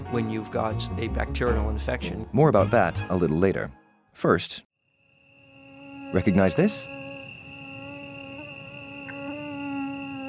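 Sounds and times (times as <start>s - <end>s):
speech: 0.1s - 4.7s, 6.1s - 7.0s
mosquito buzzing: 4.8s - 10.2s.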